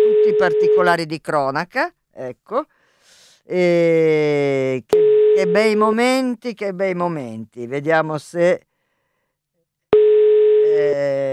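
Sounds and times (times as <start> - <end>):
telephone ringing tone: 0.0 - 1.0, 5.0 - 5.8, 10.0 - 10.8
speech: 0.3 - 2.8, 3.5 - 8.7, 10.7 - 11.3.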